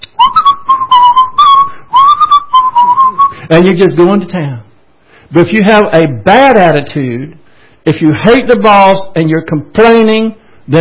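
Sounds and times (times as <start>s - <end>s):
person whistling a short lilting melody: 0.1s - 3.5s
speech: 3.5s - 4.7s, 5.3s - 10.7s.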